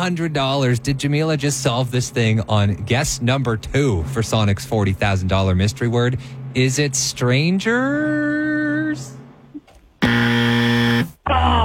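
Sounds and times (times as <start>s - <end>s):
speech: 0.0s - 9.2s
game show buzzer on a word-guessing show: 10.0s - 11.2s.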